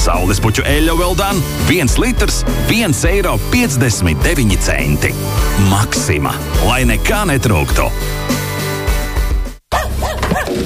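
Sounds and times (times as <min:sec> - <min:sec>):
speech: 0:00.1 - 0:08.4
dog yapping barks: 0:09.7 - 0:10.6.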